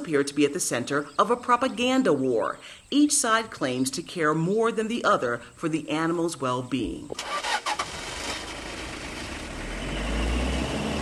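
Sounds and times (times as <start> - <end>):
speech: 0.0 - 7.5
car engine starting with sputters: 7.1 - 10.9.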